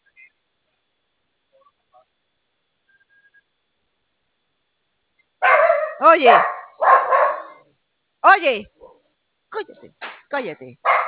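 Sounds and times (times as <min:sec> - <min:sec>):
dog barking: 0:05.4 - 0:07.6, 0:08.8 - 0:09.1, 0:10.8 - 0:11.0
speech: 0:06.0 - 0:06.5, 0:08.4 - 0:08.8, 0:09.6 - 0:11.0.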